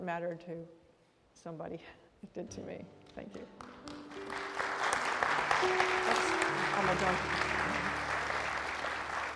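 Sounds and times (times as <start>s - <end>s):
speech: 0.0s - 0.8s, 1.4s - 3.8s, 5.6s - 7.6s
crowd applauding: 3.6s - 9.3s
low sustained musical notes: 3.7s - 9.3s.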